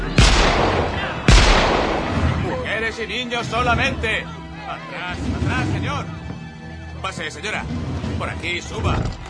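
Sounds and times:
gunshots fired into the air beside a ship's lifeboats: 0.2 - 2.5
speech: 2.9 - 6.2, 7.0 - 9.2.

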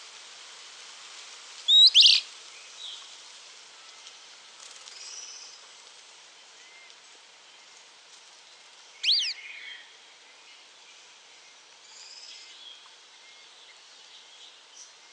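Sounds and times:
long-tailed tyrant Colonia colonus colonus calling: 1.7 - 2.3, 9.0 - 9.4.

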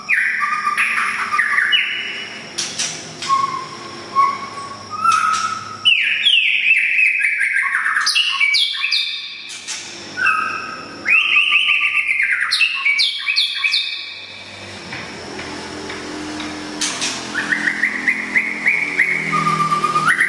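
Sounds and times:
Oriental magpie-robin singing: 0.0 - 14.4, 16.8 - 20.2.

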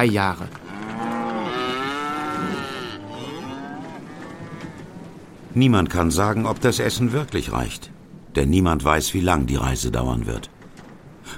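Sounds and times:
speech: 0.0 - 0.6, 5.6 - 10.5
cows mooing while driven aboard a ship as live food stores: 0.6 - 5.3.

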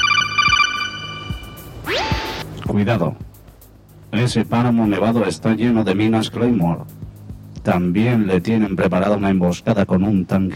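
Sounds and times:
phone ringtone signalling an incoming call: 0.0 - 2.4
rising electronic sweep: 0.0 - 2.5
speech: 2.8 - 3.3, 4.1 - 7.0, 7.6 - 10.5.

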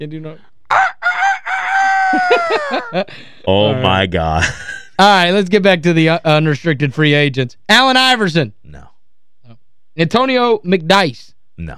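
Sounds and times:
speech: 0.0 - 0.8, 2.1 - 8.9, 10.0 - 11.7
voice imitating a rooster crowing: 0.7 - 3.0
laughter: 2.1 - 5.0.

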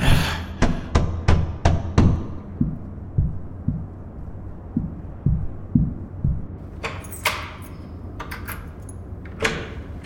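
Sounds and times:
pounding against a door: 0.6 - 4.0, 4.8 - 6.6.

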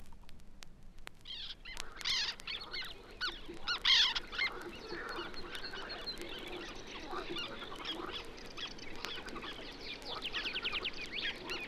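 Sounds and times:
black terns calling while hunting insects: 1.2 - 11.6.

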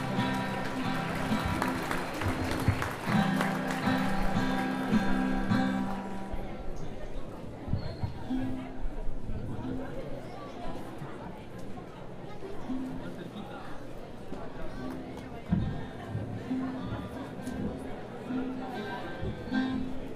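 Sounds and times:
audience clapping at an anniversary gathering: 0.0 - 6.0
crowd chatter and voices: 0.0 - 20.1.

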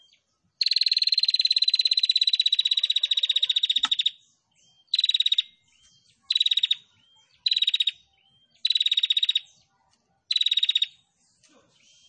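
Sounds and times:
female prinia singing a rapid dry pulsed trill: 0.0 - 12.0.

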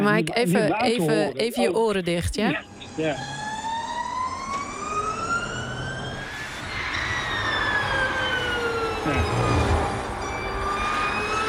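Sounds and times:
speech: 0.0 - 3.4, 9.0 - 9.5
Formula E electric race cars driving with electric whine: 2.6 - 11.4.

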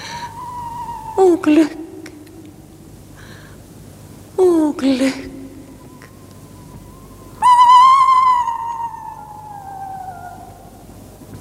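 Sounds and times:
owl calling: 0.0 - 2.2, 5.8 - 11.0
speech: 1.2 - 1.8, 4.4 - 5.3.

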